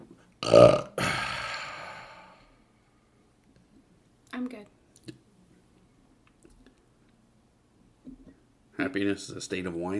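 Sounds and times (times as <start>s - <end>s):
speech: 0.4s - 0.8s, 9.0s - 9.9s
loud throaty rasping belches: 0.4s - 2.4s.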